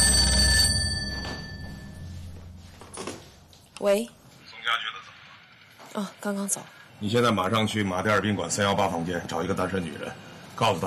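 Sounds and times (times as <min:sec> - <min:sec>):
telephone line ringing tone after dialing from a public roadside phone: 0:00.0 - 0:02.4
speech: 0:03.8 - 0:05.0, 0:05.9 - 0:10.8.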